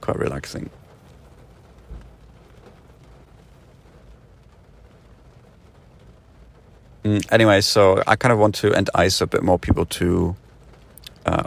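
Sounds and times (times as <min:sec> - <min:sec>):
light rain starting to fall: 0:00.0 - 0:11.4
speech: 0:00.1 - 0:00.8, 0:07.0 - 0:10.4.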